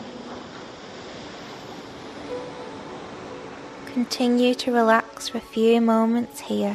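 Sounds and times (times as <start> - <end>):
faint breeze: 0.0 - 6.7
soft ocean waves lapping at sunrise: 0.4 - 5.5
speech: 4.0 - 6.7.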